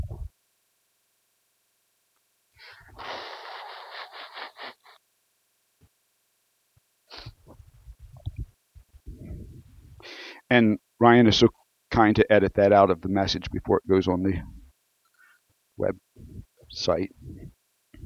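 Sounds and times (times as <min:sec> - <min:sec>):
person blowing nose: 0:02.6 - 0:05.0, 0:07.1 - 0:07.4
speech: 0:10.5 - 0:14.6, 0:15.8 - 0:17.5.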